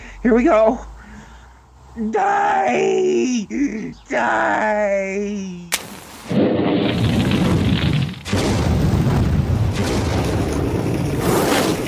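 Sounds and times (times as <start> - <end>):
speech: 0.2 - 0.9, 2.0 - 6.4
coat set on fire going up in a whoosh of flame: 5.8 - 11.8.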